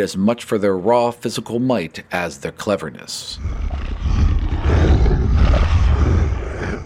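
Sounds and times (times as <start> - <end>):
speech: 0.0 - 4.2
15-foot-tall giant boar creature roaring: 3.4 - 6.8.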